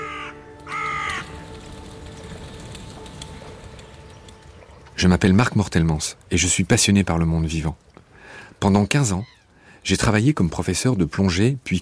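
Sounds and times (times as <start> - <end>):
crows cawing: 0.0 - 1.8
speech: 5.0 - 7.9, 8.6 - 11.8.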